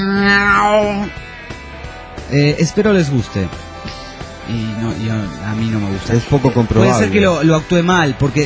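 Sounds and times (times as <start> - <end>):
human voice imitating a cat screeching as if set on fire: 0.0 - 1.1
speech: 2.3 - 8.4.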